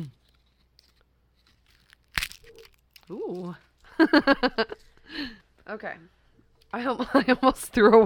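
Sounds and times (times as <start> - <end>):
crisp fortune cookie snapped open: 0.0 - 3.9
plastic fortune cookie wrapper crinkling: 0.2 - 3.8
speech: 3.1 - 8.0.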